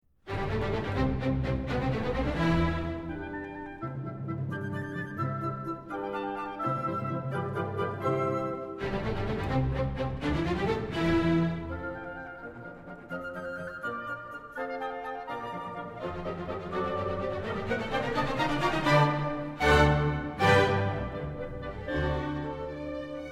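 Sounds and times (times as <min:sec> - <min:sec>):
philharmonic orchestra playing allegro: 0:00.3 - 0:23.3.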